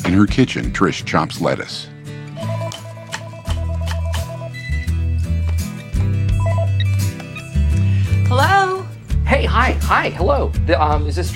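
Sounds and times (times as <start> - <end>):
steady music: 0.0 - 11.3
speech: 0.1 - 2.5, 9.3 - 11.3
electronic phone keypad beeps of a number being dialed: 2.4 - 5.0, 6.3 - 7.0
telephone ringing: 2.4 - 5.1, 6.3 - 6.9.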